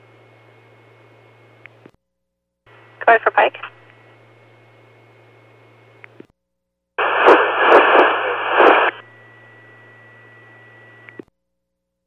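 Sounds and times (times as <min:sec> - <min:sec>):
speech: 0:03.0 - 0:03.7
loud harsh radio static crackling with sharp pops: 0:03.0 - 0:03.9, 0:07.0 - 0:09.2.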